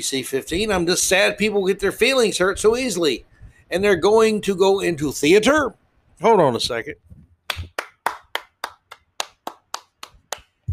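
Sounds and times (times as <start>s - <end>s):
speech: 0.0s - 7.0s
person clapping hands: 7.5s - 10.7s.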